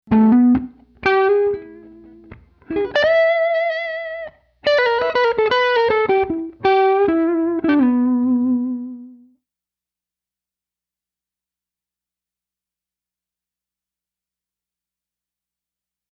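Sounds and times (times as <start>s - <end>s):
dry blues riff: 0.1s - 9.3s.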